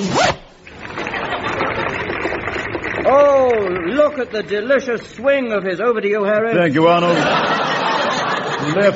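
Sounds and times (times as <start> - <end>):
trouser zip being pulled up: 0.0 - 3.2
laughter: 0.8 - 2.4, 6.7 - 8.9
speech: 4.1 - 7.6, 8.6 - 8.9.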